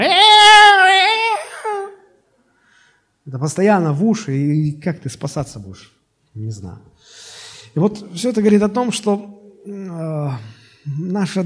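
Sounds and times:
baby wailing: 0:00.0 - 0:02.1
speech: 0:03.4 - 0:11.4.

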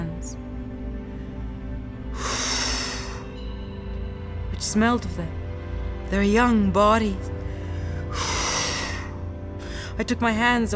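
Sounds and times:
fast hard panicked breathing: 0:00.4 - 0:04.5, 0:07.2 - 0:10.0
speech: 0:04.6 - 0:05.4, 0:06.1 - 0:07.4, 0:10.0 - 0:10.7.

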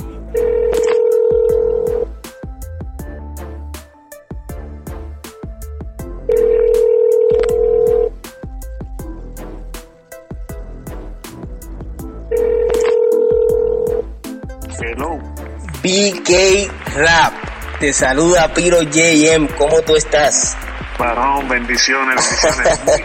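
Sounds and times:
phone call ringback tones: 0:00.4 - 0:02.1, 0:06.2 - 0:08.2, 0:12.3 - 0:14.1
speech: 0:16.0 - 0:23.0
laughter: 0:21.7 - 0:23.0.

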